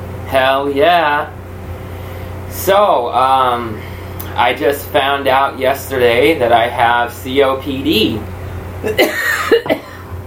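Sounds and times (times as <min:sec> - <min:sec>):
low steady hum: 0:00.0 - 0:10.2
speech: 0:00.3 - 0:01.4, 0:02.5 - 0:09.8
person coughing: 0:08.8 - 0:10.1.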